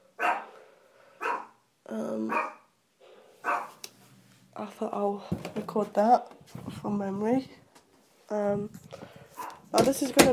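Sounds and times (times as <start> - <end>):
small dog doing playful pretend barks: 0.2 - 0.5, 1.2 - 1.6, 2.3 - 2.6, 3.4 - 3.8
speech: 1.9 - 2.6, 4.6 - 7.6, 8.3 - 9.0, 9.7 - 10.3.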